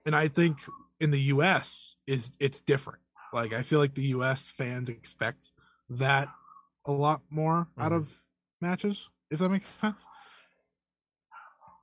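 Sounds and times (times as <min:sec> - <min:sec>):
speech: 0:00.0 - 0:10.2
dog barking in short sharp bursts: 0:03.2 - 0:03.5, 0:06.2 - 0:06.7, 0:09.9 - 0:10.4, 0:11.3 - 0:11.8.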